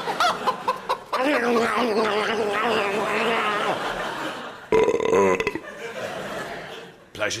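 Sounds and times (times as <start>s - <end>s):
chicken clucking and warbling: 0.0s - 2.4s
laughter: 0.0s - 7.1s
speech: 1.3s - 2.5s.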